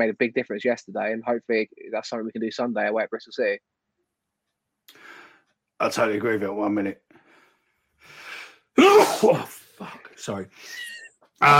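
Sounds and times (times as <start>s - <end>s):
speech: 0.0s - 3.7s, 5.8s - 7.1s, 8.8s - 10.8s, 11.4s - 11.5s
breathy intake: 4.9s - 5.4s, 7.2s - 11.0s
person sneezing: 8.8s - 10.0s.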